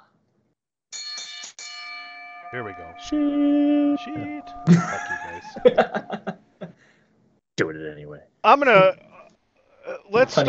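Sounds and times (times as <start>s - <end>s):
bright bell ringing: 0.9s - 6.2s
speech: 2.5s - 6.7s, 7.6s - 9.1s, 9.9s - 10.4s
laughter: 4.7s - 6.8s.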